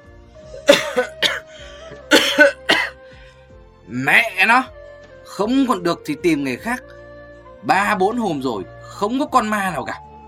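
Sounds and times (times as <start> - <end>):
old man coughing hoarsely on a wooden plank bed: 0.5 - 3.0
speech: 1.0 - 1.3, 3.9 - 4.8, 5.4 - 7.0, 7.6 - 10.0.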